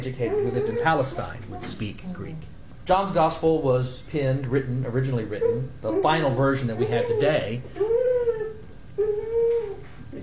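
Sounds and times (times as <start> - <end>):
dog howling: 0.0 - 1.8, 5.3 - 9.9
speech: 0.0 - 8.4.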